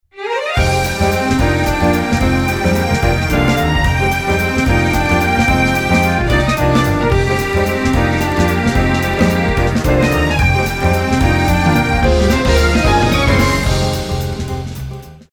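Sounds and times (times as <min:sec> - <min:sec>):
strings playing a jazz waltz: 0:00.2 - 0:15.2.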